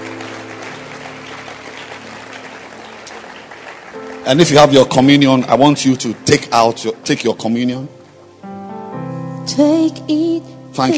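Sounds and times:
large crowd applauding: 0.0 - 7.4
speech: 4.2 - 8.0, 9.5 - 10.9.

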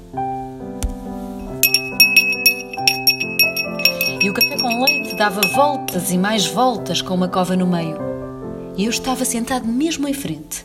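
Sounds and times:
aluminium spoon clinking against a glass while stirring: 1.4 - 6.1
sustained tonal background: 1.4 - 6.2
speech: 4.3 - 8.1, 8.8 - 10.6.

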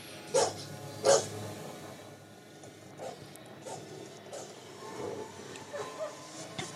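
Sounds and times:
predator dog creatures barking: 0.3 - 1.3, 3.0 - 5.1.

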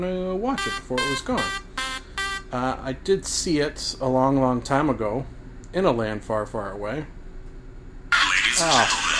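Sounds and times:
speech: 0.0 - 1.7, 2.5 - 7.2, 8.6 - 9.1
loud electronic timer alarm buzzing: 0.6 - 2.8.

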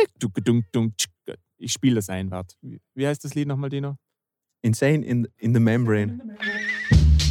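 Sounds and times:
speech: 0.2 - 4.1, 4.6 - 6.7
brief choppy vocal bursts: 6.0 - 7.1
voice imitating a horse whinny: 6.1 - 7.2.

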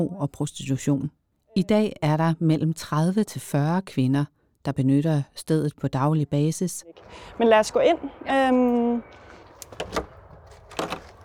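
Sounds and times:
speech: 0.0 - 9.2, 9.8 - 10.1
handle of a locked door rattling and clunking at a drop-in centre for women: 9.6 - 11.2.

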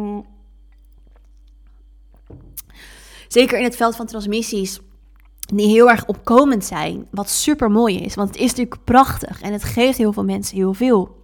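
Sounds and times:
soft wet mouth noises: 0.7 - 2.8
person sipping water: 0.7 - 2.9
speech: 3.3 - 4.9, 5.5 - 11.2.

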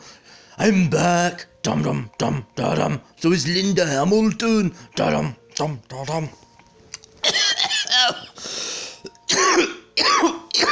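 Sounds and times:
raspy wheezing breath: 0.0 - 0.6, 8.3 - 9.2
speech: 0.6 - 6.5
person in a loud coughing fit: 7.2 - 8.4, 9.3 - 10.7.

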